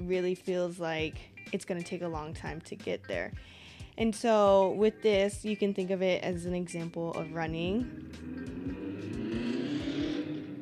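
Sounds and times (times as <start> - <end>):
speech: 0.1 - 8.5
loud car engine roaring outside: 7.8 - 10.6.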